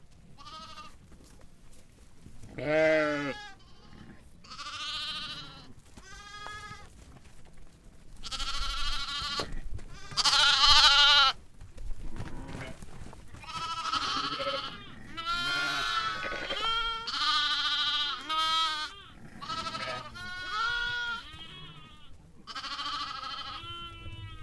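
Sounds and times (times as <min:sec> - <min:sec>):
sheep and lambs bleating in a stable: 0:00.4 - 0:01.0, 0:02.5 - 0:06.9, 0:08.2 - 0:11.4, 0:13.4 - 0:24.4
speech: 0:02.6 - 0:03.4.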